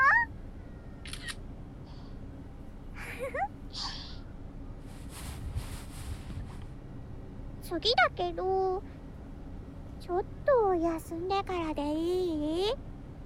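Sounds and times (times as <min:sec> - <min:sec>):
constant low rumble: 0:00.0 - 0:13.2
camera shutter taking a photo: 0:01.0 - 0:01.4
speech: 0:07.7 - 0:09.0, 0:10.1 - 0:12.9.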